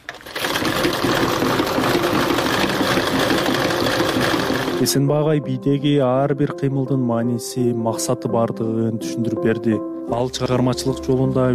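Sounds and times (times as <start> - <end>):
sewing machine stitching a belt: 0.0 - 5.0
speech: 4.8 - 11.5.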